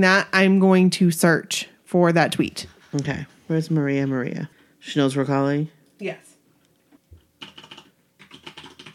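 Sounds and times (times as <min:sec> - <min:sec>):
speech: 0:00.0 - 0:06.3
rapid clacking keystrokes on a mechanical keyboard: 0:07.4 - 0:08.9.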